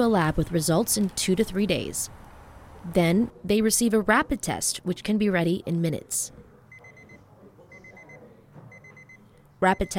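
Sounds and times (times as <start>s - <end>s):
speech: 0.0s - 2.2s, 2.8s - 6.5s, 9.6s - 9.9s
rapid-test timer beeping at an on-site testing station: 6.7s - 9.9s.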